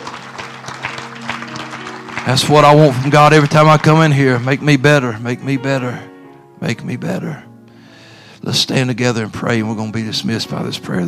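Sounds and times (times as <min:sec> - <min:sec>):
audience clapping hands in praise: 0:00.0 - 0:05.2
speech: 0:02.2 - 0:07.5, 0:08.4 - 0:11.0.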